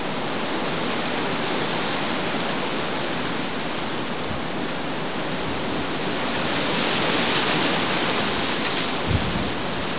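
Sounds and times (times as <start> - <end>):
wind at sea: 0.0 - 9.9.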